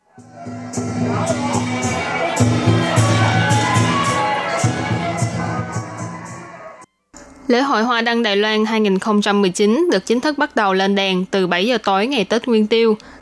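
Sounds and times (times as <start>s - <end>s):
large crowd cheering and shouting at the 2019 Taiwan Lantern Festival: 0.0s - 6.9s
speech: 7.5s - 13.1s.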